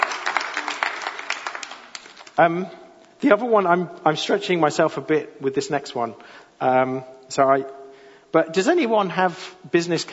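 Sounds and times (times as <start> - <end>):
crowd applauding with many overlapping claps: 0.0 - 2.4
speech: 2.4 - 10.1.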